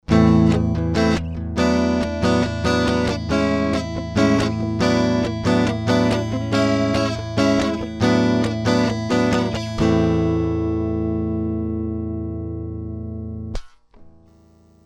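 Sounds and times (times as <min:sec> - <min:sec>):
direct input electric guitar: 0:00.0 - 0:14.5.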